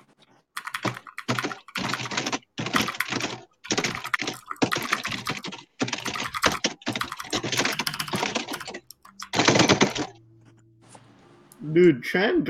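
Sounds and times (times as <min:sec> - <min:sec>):
hard fast typing on a computer keyboard: 0:00.5 - 0:10.2
speech: 0:11.7 - 0:12.4.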